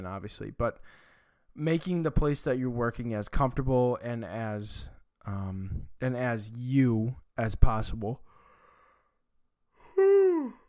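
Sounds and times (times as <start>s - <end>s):
speech: 0.0s - 8.3s
yawn: 9.8s - 10.6s.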